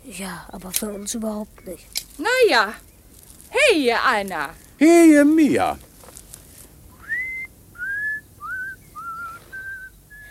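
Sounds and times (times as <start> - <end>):
speech: 0.0 - 2.9, 3.7 - 5.9
man whistling a casual tune while walking in a garden: 7.0 - 10.2.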